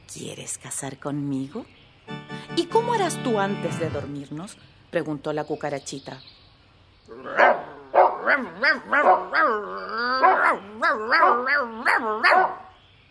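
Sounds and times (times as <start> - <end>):
speech: 0.1 - 6.4, 7.1 - 12.6
person imitating a dog barking loudly: 7.2 - 12.6.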